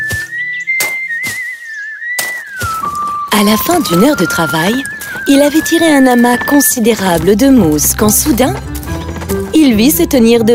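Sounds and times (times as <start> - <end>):
person whistling a tune while gathering moss on a heath: 0.0 - 7.0
speech: 3.3 - 8.8, 9.6 - 10.5.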